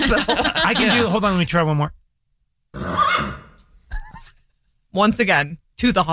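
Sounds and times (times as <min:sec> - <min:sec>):
speech: 0:00.1 - 0:02.0, 0:04.9 - 0:06.1
person imitating a horse whinny: 0:02.8 - 0:03.6.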